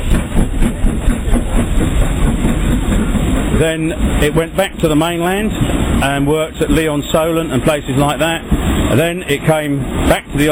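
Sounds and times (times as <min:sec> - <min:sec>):
train rumbling past: 0:00.0 - 0:10.5
speech: 0:03.6 - 0:10.5.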